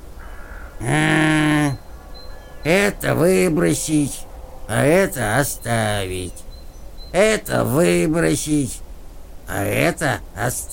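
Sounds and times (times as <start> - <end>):
crow cawing: 0.2 - 5.4
speech: 0.8 - 1.2, 2.6 - 6.5, 7.1 - 8.8, 9.5 - 10.7.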